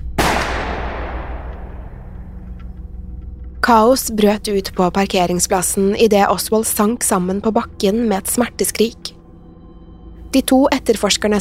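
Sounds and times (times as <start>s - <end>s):
pistol shot fired into a man's stomach in a parking lot: 0.2s - 2.4s
speech: 3.7s - 9.2s, 10.3s - 11.4s.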